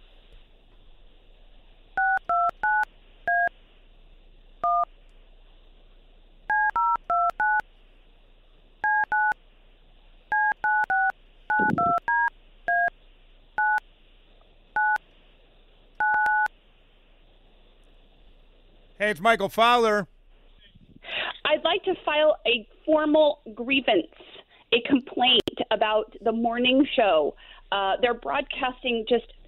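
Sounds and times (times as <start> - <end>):
faint steady hum: 0.0 - 29.4
touch-tone telephone dialing beeps as a call is put through: 2.0 - 3.5, 6.5 - 7.6, 8.8 - 9.4, 10.3 - 12.9, 13.6 - 13.8, 14.8 - 15.0, 16.0 - 16.5
speech: 11.6 - 11.9, 19.0 - 20.1, 21.8 - 24.1, 24.8 - 29.4.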